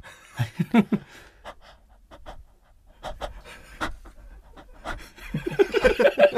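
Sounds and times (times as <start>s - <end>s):
person imitating panting with rapid breathy gasps: 1.3s - 5.4s
laughter: 5.2s - 6.3s.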